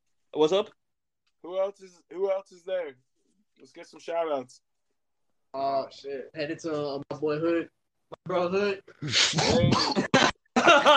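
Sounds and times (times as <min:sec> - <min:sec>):
speech: 0:00.4 - 0:00.8, 0:01.4 - 0:04.7, 0:05.5 - 0:10.0, 0:10.8 - 0:10.9
man coughing harshly after smoking hookah: 0:09.0 - 0:10.8.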